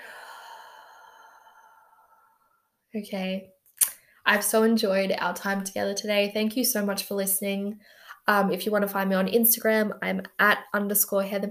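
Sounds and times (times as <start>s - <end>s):
deep exhale at the end of a guided breathing exercise: 0.0s - 2.8s
speech: 2.9s - 3.6s, 4.3s - 11.4s.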